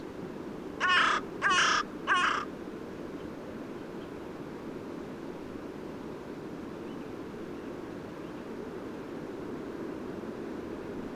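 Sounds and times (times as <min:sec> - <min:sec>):
Corvus corone carrion crow cawing: 0:00.8 - 0:02.5.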